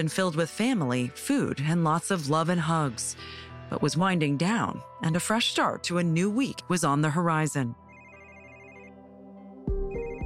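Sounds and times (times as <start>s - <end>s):
speech: 0.0s - 7.8s
melodic electronic phone ringtone: 7.8s - 10.2s.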